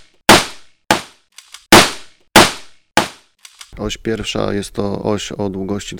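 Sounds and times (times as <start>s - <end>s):
gunshots on an indoor shooting range: 0.0s - 3.3s
speech: 3.8s - 5.9s.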